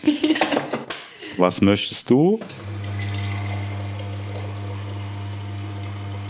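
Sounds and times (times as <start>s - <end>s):
speech: 1.4s - 2.7s
coffee machine pump humming while brewing: 2.4s - 6.2s
hissing trickle of coffee liquid: 2.6s - 6.2s.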